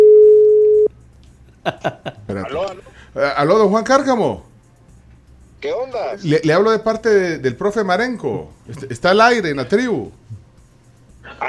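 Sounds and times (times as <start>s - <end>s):
telephone ringing tone on an outgoing call: 0.0s - 0.9s
laughter: 1.5s - 3.0s, 11.3s - 11.4s
speech: 3.3s - 4.5s, 5.9s - 10.2s.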